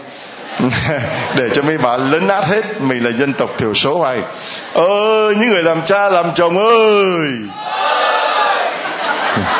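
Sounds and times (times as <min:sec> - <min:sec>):
laughter: 0:00.4 - 0:02.8, 0:08.5 - 0:09.5
speech: 0:00.6 - 0:07.7
audience of men shouting a response together: 0:07.5 - 0:08.8.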